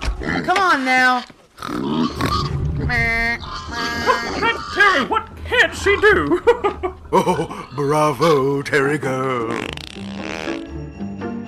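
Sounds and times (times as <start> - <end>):
pigs oinking and grunting: 0.0 - 0.8, 1.6 - 6.1, 6.7 - 8.6, 9.4 - 10.7
speech: 0.4 - 2.2, 4.8 - 10.1
laughter: 6.1 - 8.3.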